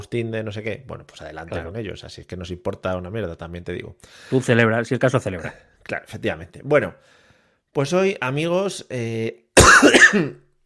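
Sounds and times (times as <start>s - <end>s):
speech: 0.0s - 10.4s
person clearing throat and coughing: 9.6s - 10.5s.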